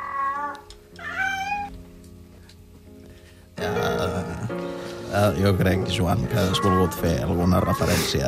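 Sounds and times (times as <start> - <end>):
cat meowing and yowling: 0.0 - 1.8, 6.3 - 8.1
speech: 3.6 - 8.2.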